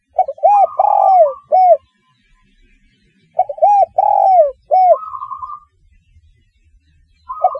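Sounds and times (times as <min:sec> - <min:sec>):
spotted dove cooing: 0:00.0 - 0:01.9, 0:03.3 - 0:05.7, 0:07.3 - 0:07.5.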